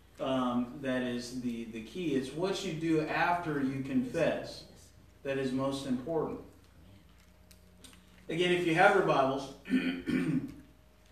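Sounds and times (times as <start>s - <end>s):
speech: 0.2s - 6.5s, 8.3s - 10.6s
throat clearing during a sermon: 9.6s - 10.7s.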